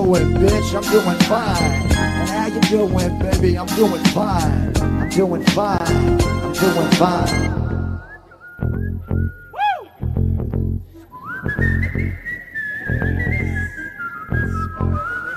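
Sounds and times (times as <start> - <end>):
steady heavy low-end thumping beat: 0.0 - 7.5
person whistling a melody: 0.0 - 9.9, 11.1 - 15.3
speech: 0.1 - 7.6.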